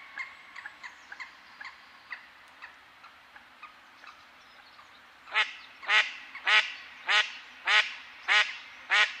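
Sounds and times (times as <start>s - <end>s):
mallard quacking: 5.3s - 9.1s.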